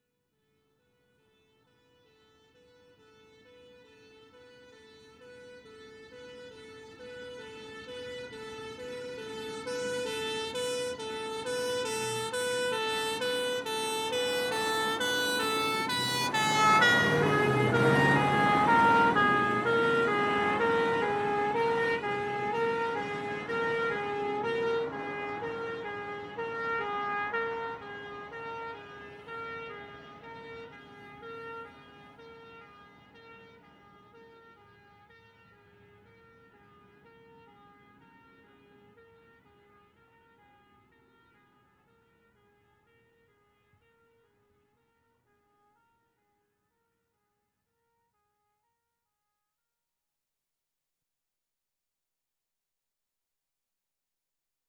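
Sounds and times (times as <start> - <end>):
fire engine passing with emergency siren and engine revving: 3.4 - 40.7.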